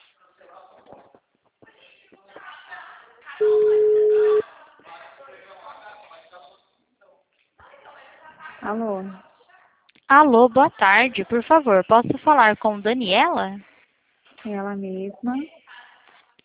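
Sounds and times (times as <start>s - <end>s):
telephone ringback tone as an outgoing call is placed: 3.4s - 4.4s
speech: 8.7s - 9.2s, 10.1s - 13.7s, 14.4s - 15.6s.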